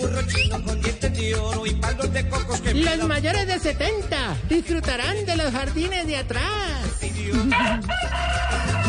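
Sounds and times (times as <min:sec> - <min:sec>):
speech: 0:00.2 - 0:08.3
rooster crowing: 0:07.5 - 0:08.8.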